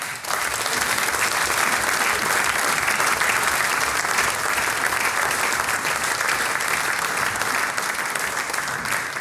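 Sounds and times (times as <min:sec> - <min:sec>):
large audience applauding at a village event in Unterlamm: 0:00.0 - 0:09.2.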